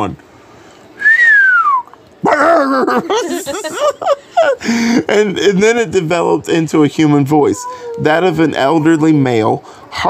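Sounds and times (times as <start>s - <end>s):
speech: 0.0s - 0.3s, 2.6s - 10.0s
person imitating a whistle: 1.0s - 1.9s
laughter: 2.2s - 5.6s.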